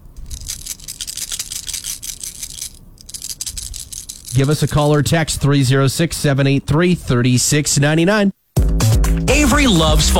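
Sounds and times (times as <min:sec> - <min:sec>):
small hard Skittles candies shaken in a hand: 0:00.0 - 0:05.0
speech: 0:04.4 - 0:08.4, 0:09.3 - 0:10.1.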